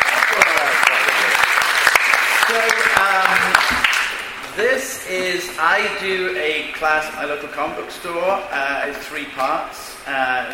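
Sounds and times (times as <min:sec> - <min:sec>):
people cheering: 0:00.0 - 0:04.2
Comic-Con panel audience clapping to welcome a speaker: 0:00.0 - 0:04.6
speech: 0:04.6 - 0:10.5.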